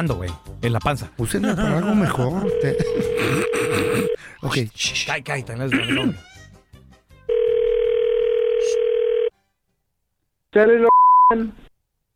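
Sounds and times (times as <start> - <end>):
speech: 0.0 - 6.4, 10.6 - 11.7
laughter: 1.4 - 4.2
telephone dial tone: 2.5 - 4.2, 7.3 - 9.3.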